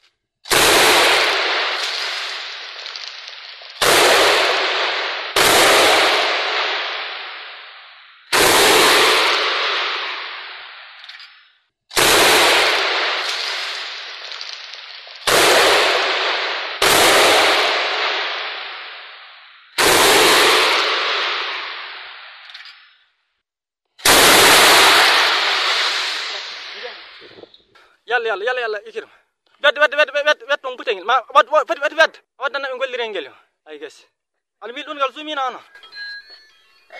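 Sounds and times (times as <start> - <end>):
gunfire from armed fighters at military buildings: 0.5 - 22.9, 24.0 - 27.6
speech: 28.2 - 35.9.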